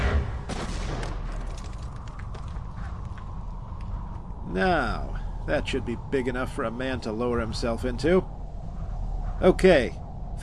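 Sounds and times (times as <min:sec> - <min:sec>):
gunshot blasting the top off an object: 0:00.0 - 0:01.3
faint cracks: 0:00.6 - 0:04.3
speech: 0:04.5 - 0:08.4, 0:09.4 - 0:10.4.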